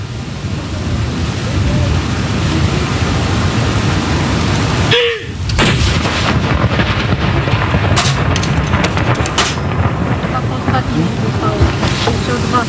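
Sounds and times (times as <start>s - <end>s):
steady wind-like rumble: 0.0s - 12.6s
ceremonial cannon salute fired outdoors: 5.4s - 12.6s.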